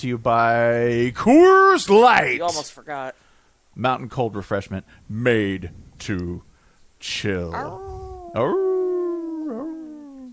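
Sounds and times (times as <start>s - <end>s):
speech: 0.0s - 3.2s, 3.8s - 8.7s
person imitating a howl: 7.5s - 10.3s.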